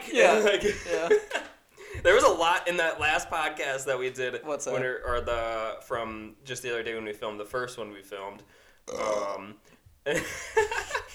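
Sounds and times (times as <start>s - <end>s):
laughter: 0.0s - 2.3s, 10.1s - 11.1s
speech: 0.1s - 1.4s, 2.0s - 11.1s
drawn-out throaty burps: 8.9s - 9.7s.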